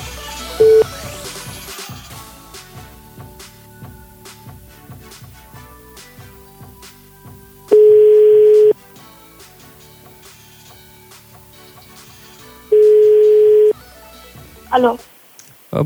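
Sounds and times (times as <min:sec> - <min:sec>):
faint music: 0:00.0 - 0:15.8
phone ringback tone beeps: 0:00.6 - 0:00.8, 0:07.7 - 0:08.8, 0:12.7 - 0:13.8
speech: 0:14.8 - 0:15.1.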